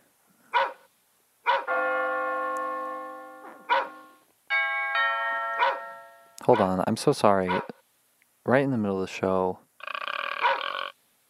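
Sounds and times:
dog barking loudly in short bursts: 0.5s - 0.8s, 1.5s - 1.7s, 3.7s - 4.0s, 5.6s - 5.8s, 6.5s - 6.8s, 7.4s - 7.7s, 10.4s - 10.7s
house doorbell ringing with chime tones: 1.7s - 6.5s
speech: 6.4s - 7.8s, 8.4s - 9.6s.

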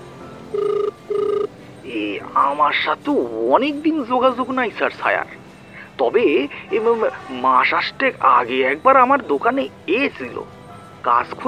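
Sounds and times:
telephone ringing as a call is placed: 0.3s - 1.6s
speech: 2.0s - 5.4s, 6.0s - 11.4s.

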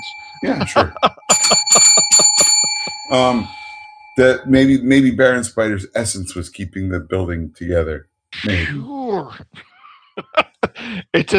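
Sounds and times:
bright bicycle-style science bell ringing: 0.0s - 5.4s
laughter: 0.4s - 2.5s, 8.4s - 11.3s
speech: 0.4s - 2.5s, 3.1s - 3.6s, 4.2s - 11.3s.

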